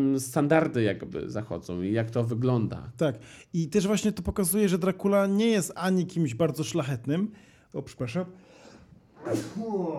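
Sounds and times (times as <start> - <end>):
speech: 0.0 - 8.4, 9.2 - 9.9
person sneezing: 9.2 - 9.9.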